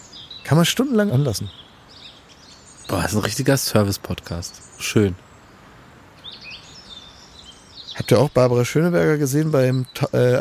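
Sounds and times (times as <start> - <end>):
birds chirping in a chorus of tweets and trills: 0.0 - 10.3
soft hiss: 0.0 - 10.3
speech: 0.4 - 1.6, 2.9 - 5.3, 8.1 - 10.3.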